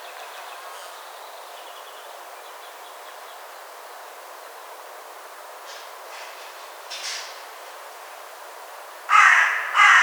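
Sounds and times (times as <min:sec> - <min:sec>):
carrion crow Corvus corone cawing: 0:09.1 - 0:10.0.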